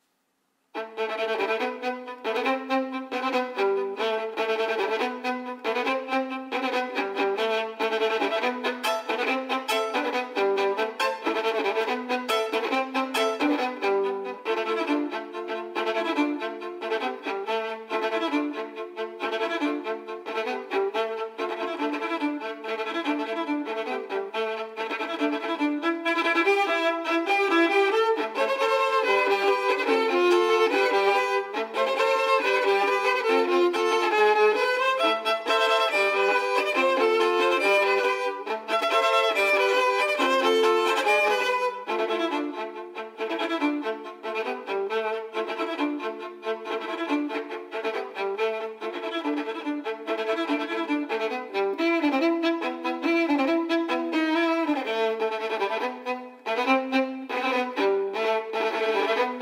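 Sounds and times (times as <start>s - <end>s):
violin cover: 0.7s - 59.3s.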